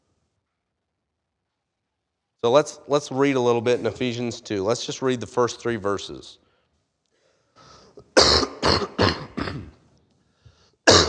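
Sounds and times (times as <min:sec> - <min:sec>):
speech: 0:02.4 - 0:06.4
person coughing with throat clearing: 0:08.0 - 0:09.8, 0:10.9 - 0:11.0.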